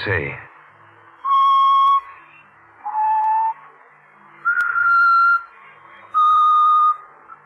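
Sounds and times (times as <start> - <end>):
person whistling a melody: 1.2 - 2.1, 2.9 - 3.6, 4.5 - 5.5, 6.2 - 7.0.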